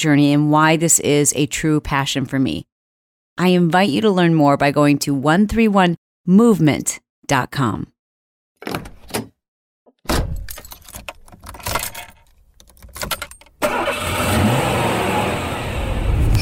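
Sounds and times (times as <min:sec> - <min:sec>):
speech: 0:00.0 - 0:02.7, 0:03.4 - 0:07.9, 0:08.6 - 0:08.9
keys jingling: 0:10.3 - 0:13.6
car engine starting: 0:13.6 - 0:16.4.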